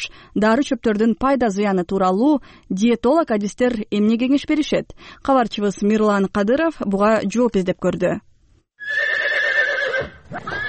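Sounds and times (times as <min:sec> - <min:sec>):
speech: 0:00.0 - 0:08.3, 0:10.3 - 0:10.6
horse in Atbashi district neighing: 0:08.8 - 0:10.6.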